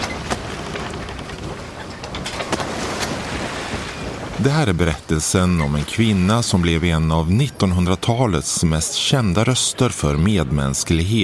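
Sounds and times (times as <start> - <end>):
rush of water from a boat crossing the Adriatic Sea: 0.0 - 7.0
waves breaking against the boat hull: 0.0 - 7.1
boat engine noise at sea leaving Brindisi: 0.0 - 11.2
speech: 4.4 - 11.2.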